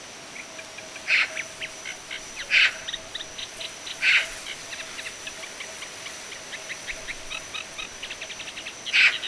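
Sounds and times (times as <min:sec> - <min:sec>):
faint rapid ticking and chirping: 0:00.4 - 0:09.2
Eurasian magpie Pica pica harsh rasping calls: 0:01.1 - 0:05.0.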